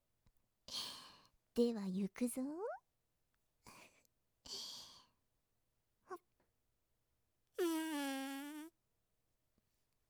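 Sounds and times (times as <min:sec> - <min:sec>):
speech: 0:01.6 - 0:02.6
long drawn-out fart: 0:07.6 - 0:08.7.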